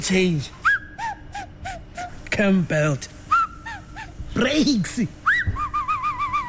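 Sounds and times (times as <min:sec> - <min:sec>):
speech: 0:00.0 - 0:00.6, 0:02.4 - 0:03.1, 0:04.4 - 0:05.2
person whistling in surprise: 0:00.6 - 0:02.2, 0:03.3 - 0:03.7, 0:05.3 - 0:06.4.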